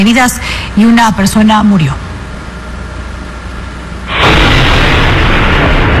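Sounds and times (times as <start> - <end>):
speech: 0.0 - 2.0
sustained roaring rumble: 3.1 - 5.9
car bomb explosion: 4.1 - 5.9.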